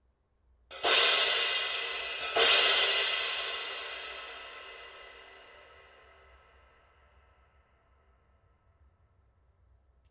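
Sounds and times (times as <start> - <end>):
cymbal: 0.7 - 8.4.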